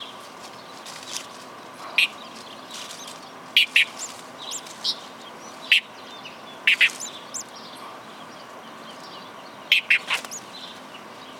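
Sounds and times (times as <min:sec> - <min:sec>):
calandra lark calling: 0:02.0 - 0:02.2, 0:03.6 - 0:05.0, 0:05.6 - 0:07.5, 0:09.7 - 0:10.4.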